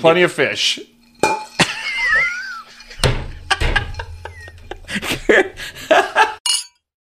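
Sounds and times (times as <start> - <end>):
speech: 0.0 - 0.9, 4.9 - 6.4
heavy glasses clinking together in a toast: 1.0 - 5.4, 6.4 - 6.8
chuckling: 1.6 - 6.4.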